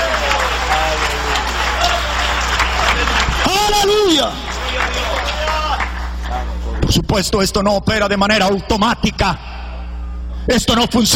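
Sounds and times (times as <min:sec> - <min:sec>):
faint voices and cheers: 0:00.0 - 0:06.5
large audience applauding: 0:00.0 - 0:06.6
speech: 0:07.1 - 0:09.5, 0:10.4 - 0:11.1.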